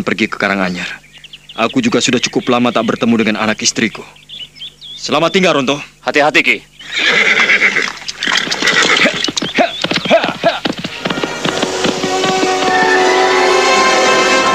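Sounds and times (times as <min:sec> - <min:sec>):
speech: 0:00.0 - 0:01.0, 0:01.6 - 0:04.2, 0:05.0 - 0:07.4
horse neighing: 0:06.8 - 0:14.5
galloping hoofbeats clattering: 0:07.8 - 0:14.5.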